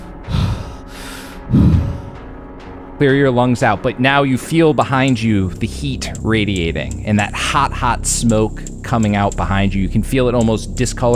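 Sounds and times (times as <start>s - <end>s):
heavy breath: 0.0s - 2.2s
sharp gasp for air: 0.3s - 2.2s
speech: 3.0s - 11.1s.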